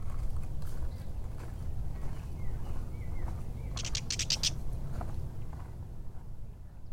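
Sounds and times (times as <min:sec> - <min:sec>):
steady low outdoor rumble: 0:00.0 - 0:06.9
catbird chatter from bramble bushes by a marsh: 0:03.7 - 0:04.6.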